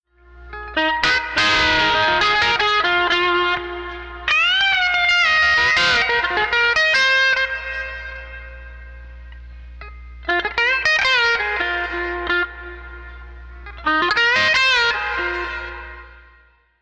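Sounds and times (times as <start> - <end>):
pedal steel guitar: 0.1 - 16.8.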